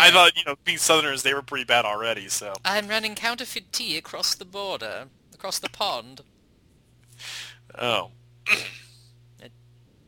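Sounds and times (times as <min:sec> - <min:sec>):
speech: 0:00.0 - 0:06.3, 0:07.2 - 0:08.8
short raspy throat clearing: 0:08.5 - 0:08.9.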